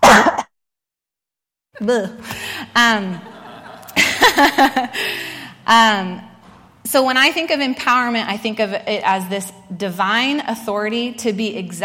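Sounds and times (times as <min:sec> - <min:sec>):
person coughing: 0:00.0 - 0:00.5
speech: 0:01.8 - 0:03.3, 0:04.0 - 0:06.3, 0:06.9 - 0:11.8
laughter: 0:02.9 - 0:05.0.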